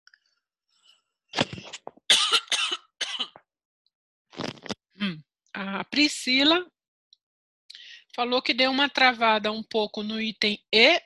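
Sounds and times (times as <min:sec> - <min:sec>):
person coughing: 0:01.4 - 0:03.4
speech: 0:05.6 - 0:06.8, 0:08.2 - 0:11.0.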